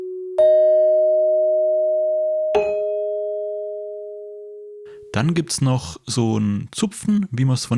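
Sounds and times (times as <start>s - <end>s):
clear bell-like chime tones marking an entry being added: 0.4s - 4.9s
speech: 5.2s - 7.7s.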